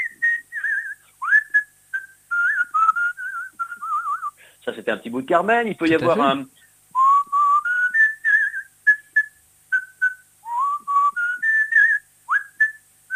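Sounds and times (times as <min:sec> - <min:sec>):
person whistling a lilting waltz tune: 0:00.0 - 0:04.4, 0:07.0 - 0:13.1
speech: 0:04.7 - 0:06.6.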